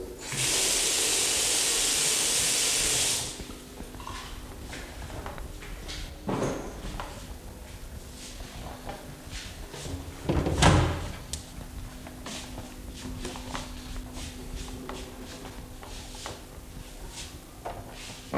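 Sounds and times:
water gushing from a tap into a bathroom sink: 0:00.2 - 0:04.2
soft knocks and shuffles: 0:03.5 - 0:18.3.

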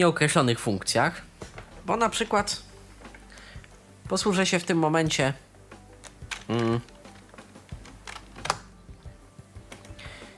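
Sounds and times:
speech: 0:00.0 - 0:01.3, 0:01.9 - 0:02.7, 0:04.1 - 0:05.4, 0:06.5 - 0:06.9
computer keys pressed for NVDA shortcut: 0:06.0 - 0:08.7.

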